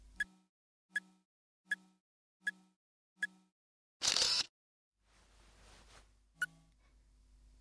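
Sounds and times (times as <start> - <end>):
camera self-timer beeps: 0.2 - 4.5
camera shutter burst: 4.0 - 4.5.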